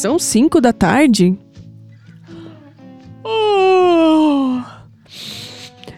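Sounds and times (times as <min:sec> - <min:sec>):
speech: 0:00.0 - 0:01.4
breathy exhale: 0:02.0 - 0:02.9, 0:04.6 - 0:05.9
person yawning: 0:03.3 - 0:04.9.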